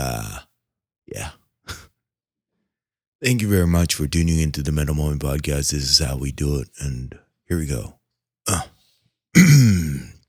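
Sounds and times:
speech: 0:03.2 - 0:08.7
person clearing throat: 0:08.5 - 0:08.7, 0:09.4 - 0:10.2.

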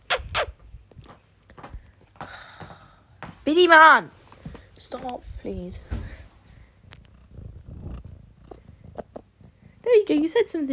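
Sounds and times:
speech: 0:03.4 - 0:04.2, 0:04.8 - 0:06.0, 0:10.1 - 0:10.7
female cat purring against the microphone: 0:05.2 - 0:10.7.

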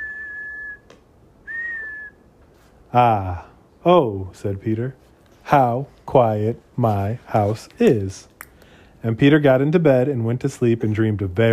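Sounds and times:
tea kettle whistling: 0:00.0 - 0:00.9, 0:01.5 - 0:02.2
speech: 0:02.9 - 0:08.3, 0:09.0 - 0:11.5.

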